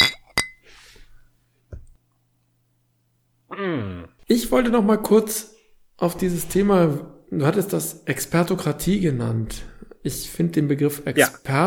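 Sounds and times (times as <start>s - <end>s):
glasses clinking in a toast: 0.0s - 0.7s
speech: 3.6s - 11.6s.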